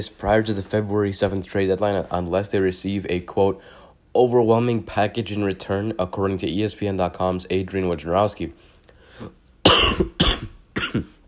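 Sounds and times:
speech: 0.0 - 10.3, 10.9 - 11.1
person coughing: 9.6 - 11.2.

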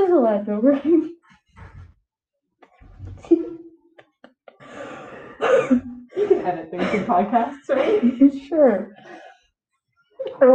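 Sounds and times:
speech: 0.4 - 1.2, 5.6 - 9.2
laughter: 2.6 - 8.4
deep calming breaths: 4.6 - 5.5, 9.0 - 9.6.

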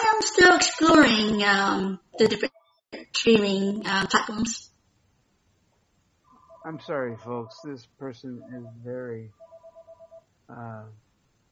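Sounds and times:
speech: 0.2 - 2.6, 3.2 - 4.7, 6.6 - 9.4, 10.5 - 11.0
electronic telephone ringing tones on an outgoing call: 6.3 - 7.7, 8.3 - 10.3.

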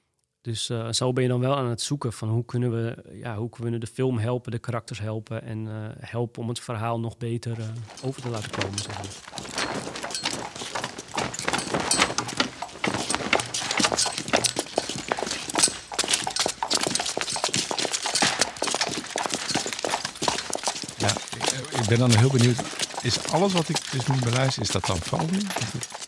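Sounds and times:
speech: 0.4 - 9.9, 21.9 - 26.0
coconut shell foley of horse hooves trotting: 7.5 - 26.0.

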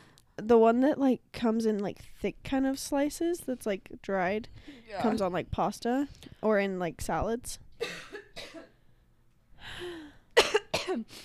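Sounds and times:
speech: 0.4 - 8.1
person coughing: 7.8 - 8.8, 10.4 - 11.2.

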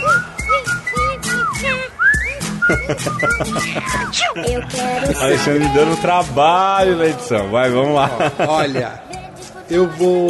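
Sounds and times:
person whistling a short catchy tune: 0.0 - 4.1
laughter: 2.6 - 6.0, 7.8 - 9.1
speech: 2.7 - 9.1, 9.7 - 10.2.

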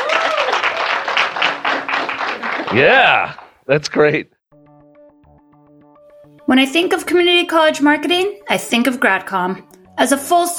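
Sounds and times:
audience applause: 0.0 - 3.8
speech: 2.7 - 4.4, 6.5 - 10.5.

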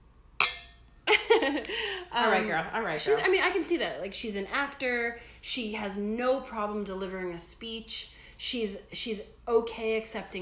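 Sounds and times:
glasses clinking together: 0.4 - 0.9
speech: 1.5 - 10.4.

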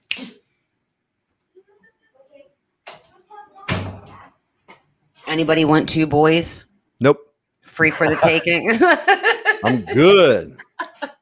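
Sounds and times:
door shutting with a thud: 3.6 - 4.2
speech: 5.3 - 10.7
laughter: 7.8 - 11.2.

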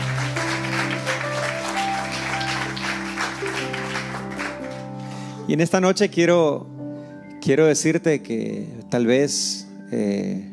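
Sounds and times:
crowd clapping steadily: 0.0 - 5.1
sustained keyboard chords: 0.0 - 10.5
speech: 5.5 - 6.7, 7.4 - 10.5.

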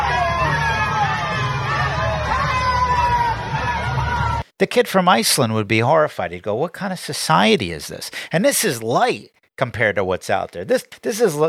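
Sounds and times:
dense outdoor crowd shouting and chattering in a shopping street: 0.0 - 4.4
speech: 4.6 - 11.4.

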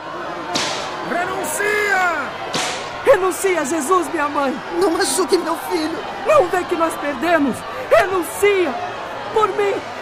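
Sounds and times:
whip cracks: 0.6 - 1.0, 2.5 - 2.9
strained voices crying out: 1.0 - 10.0
speech: 3.0 - 9.9.

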